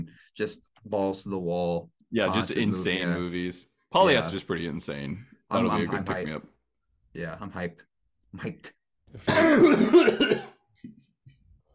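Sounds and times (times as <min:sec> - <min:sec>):
speech: 0:00.1 - 0:06.5, 0:07.1 - 0:11.1
violent coughing: 0:09.2 - 0:10.6.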